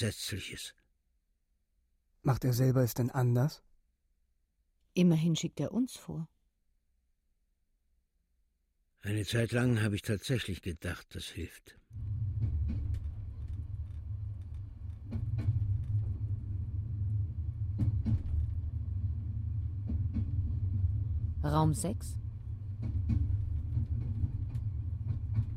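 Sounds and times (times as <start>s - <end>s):
speech: 0.0s - 0.8s, 2.2s - 3.7s, 5.0s - 6.3s, 9.0s - 12.2s, 21.4s - 22.2s
high-speed TGV train travelling at night: 11.9s - 25.5s
rail clicks: 11.9s - 25.5s.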